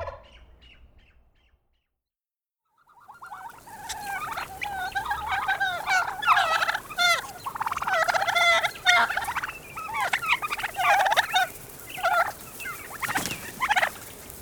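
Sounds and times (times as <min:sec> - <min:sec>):
wild turkey calling: 0:02.9 - 0:14.3.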